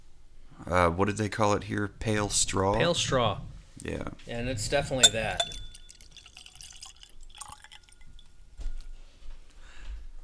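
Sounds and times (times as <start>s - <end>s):
speech: 0.7s - 5.6s
whisky dripping onto paper cheat sheets: 5.0s - 8.9s.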